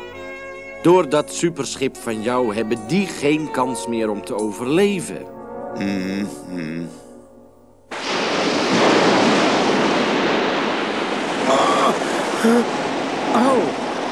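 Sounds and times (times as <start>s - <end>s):
speech: 0.8s - 7.0s, 12.4s - 12.8s
short voice: 5.8s - 7.0s
roar of sea surf: 7.9s - 14.1s.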